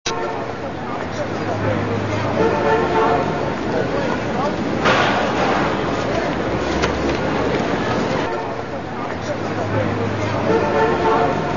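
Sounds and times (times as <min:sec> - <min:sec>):
car horn on a city street: 0:00.0 - 0:00.6, 0:01.6 - 0:03.7, 0:08.2 - 0:08.6, 0:10.2 - 0:11.5
city street ambience: 0:00.0 - 0:11.5.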